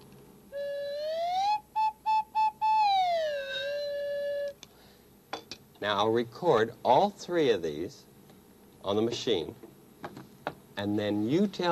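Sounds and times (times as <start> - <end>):
slide whistle: 0.5 - 4.6
speech: 5.8 - 8.1, 8.8 - 9.6, 10.8 - 11.7.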